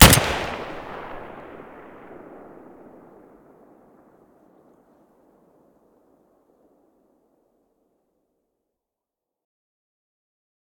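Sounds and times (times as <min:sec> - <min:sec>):
SVD rifle muzzle blast: 0:00.0 - 0:01.1.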